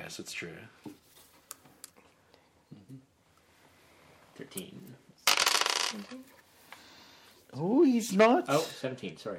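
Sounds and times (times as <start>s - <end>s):
speech: 0.1s - 0.9s, 4.4s - 5.0s, 5.9s - 6.4s, 7.5s - 9.3s
dice rolled across a tabletop in a game: 5.3s - 6.1s.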